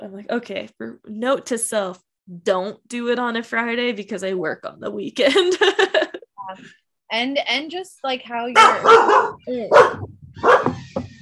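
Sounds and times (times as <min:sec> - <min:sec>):
speech: 0:00.0 - 0:10.5
dog barking: 0:08.6 - 0:10.8.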